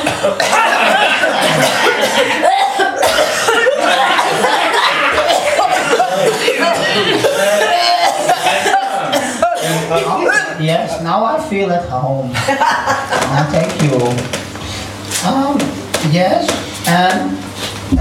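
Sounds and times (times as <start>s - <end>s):
audience members coughing on request at a live event: 0.0s - 10.6s
crowd chuckling and laughing: 0.0s - 10.6s, 12.3s - 13.5s
speech: 0.2s - 0.7s, 10.6s - 14.5s, 15.2s - 17.9s.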